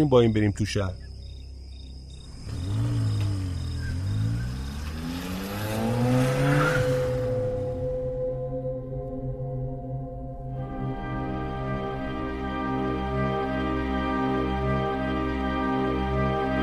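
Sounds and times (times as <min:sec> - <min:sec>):
speech: 0:00.0 - 0:01.0
stolen car engine revving through gear shifts in the desert: 0:02.2 - 0:09.2, 0:10.5 - 0:16.6
harsh car tire screech: 0:02.3 - 0:08.6.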